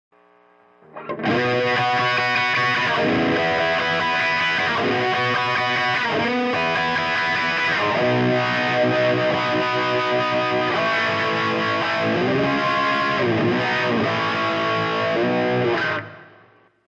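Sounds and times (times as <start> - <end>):
guitar riff with wah effect: 0.8 - 16.5.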